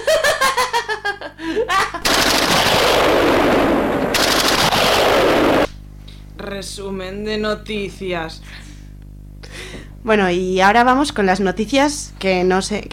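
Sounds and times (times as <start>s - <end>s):
bursts of laughter: 0.0s - 2.0s
bombardment sound effect with dense continuous rapid gunfire: 2.0s - 5.8s
speech: 6.5s - 8.5s, 10.0s - 12.9s.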